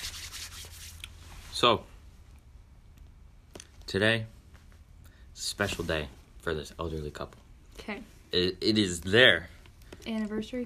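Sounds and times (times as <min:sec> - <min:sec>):
dry hands rubbing together: 0:00.0 - 0:01.4
speech: 0:01.6 - 0:01.9, 0:03.9 - 0:04.4, 0:05.4 - 0:10.6.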